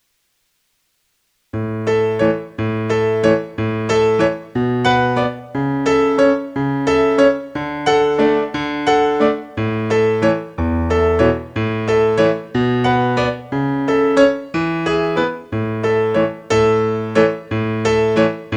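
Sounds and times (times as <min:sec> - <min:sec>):
musical accompaniment in B minor and F minor: 0:01.6 - 0:18.5.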